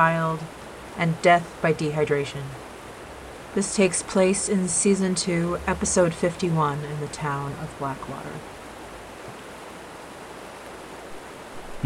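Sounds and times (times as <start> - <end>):
speech: 0.0 - 2.7, 3.6 - 8.6
river water flowing rapidly: 0.4 - 1.6, 2.6 - 3.6, 8.4 - 11.8.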